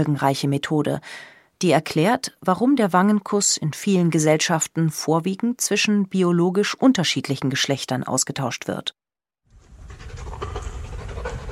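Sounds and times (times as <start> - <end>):
speech: 0.0 - 9.0
service dog panting at a military dog school: 9.8 - 11.5.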